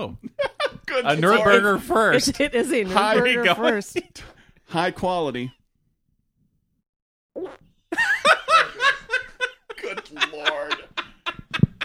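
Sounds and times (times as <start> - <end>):
speech: 0.0 - 0.3, 0.9 - 5.6
several people laughing loudly: 0.2 - 4.2, 8.0 - 11.8
brief buzzy fart: 7.4 - 7.8.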